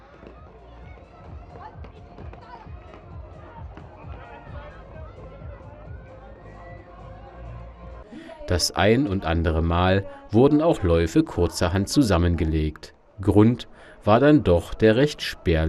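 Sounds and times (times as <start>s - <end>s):
mass of runners' footsteps pattering: 0.0s - 7.4s
crowd murmur: 0.0s - 15.6s
speech: 8.5s - 15.6s.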